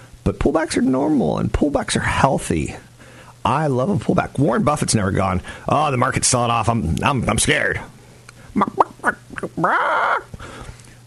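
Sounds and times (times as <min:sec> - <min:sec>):
speech: 0:00.3 - 0:10.6
chicken squawk: 0:08.6 - 0:10.3.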